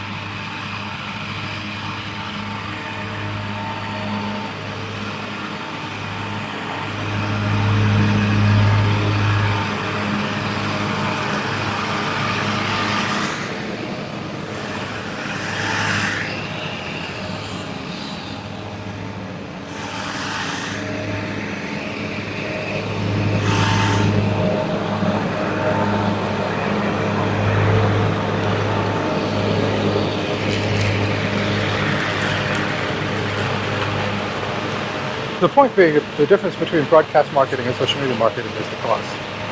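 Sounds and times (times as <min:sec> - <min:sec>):
lawnmower engine droning: 0:00.0 - 0:39.5
speech: 0:35.5 - 0:39.3.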